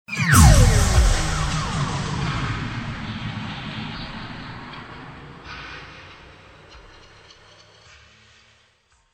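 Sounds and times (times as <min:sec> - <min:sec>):
scientific laser impact: 0:00.1 - 0:05.4.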